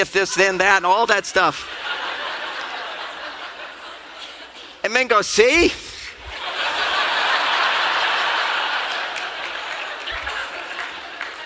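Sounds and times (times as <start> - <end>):
speech: 0.0 - 2.0, 4.8 - 5.9
laughter: 1.6 - 4.8, 6.2 - 11.4
live audience clapping: 6.4 - 11.4.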